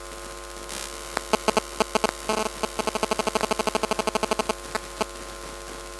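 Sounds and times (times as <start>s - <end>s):
electronic mobile phone sound: 1.1s - 5.1s.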